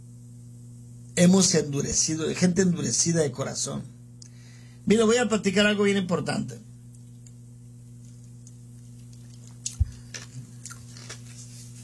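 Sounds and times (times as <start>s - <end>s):
low steady hum: 0.0s - 11.8s
speech: 1.2s - 4.0s, 4.9s - 6.7s
person chewing ice with sharp brittle bites: 7.0s - 11.4s.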